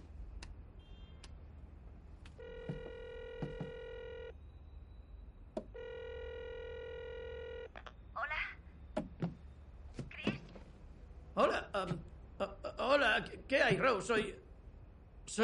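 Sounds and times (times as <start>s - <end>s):
mobile phone keypad taps: 2.6s - 3.8s
speech: 11.4s - 14.4s.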